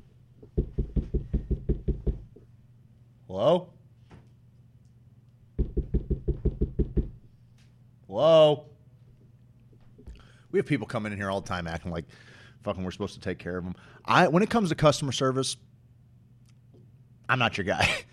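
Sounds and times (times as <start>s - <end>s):
knocking on a door: 0.6s - 2.3s, 5.6s - 7.2s
speech: 3.3s - 3.8s, 8.2s - 8.7s, 10.5s - 15.7s, 17.3s - 18.1s.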